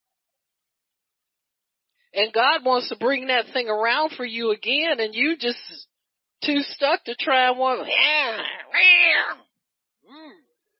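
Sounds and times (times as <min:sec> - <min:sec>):
speech: 0:02.1 - 0:09.4
person imitating a hood cat meowing: 0:07.8 - 0:09.4.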